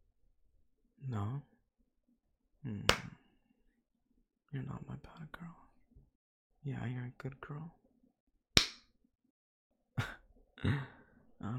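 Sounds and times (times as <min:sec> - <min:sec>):
speech: 0:01.0 - 0:01.5, 0:02.6 - 0:03.1, 0:04.5 - 0:05.6, 0:06.6 - 0:07.8, 0:10.0 - 0:11.5
hand slapping a person's face: 0:02.9 - 0:03.2, 0:08.6 - 0:08.9.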